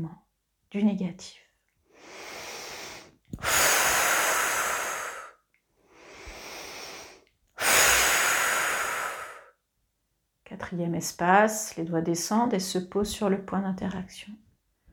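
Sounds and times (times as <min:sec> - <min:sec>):
speech: 0:00.0 - 0:01.4, 0:10.6 - 0:14.4
slow deep breathing during a relaxation exercise: 0:01.9 - 0:09.5.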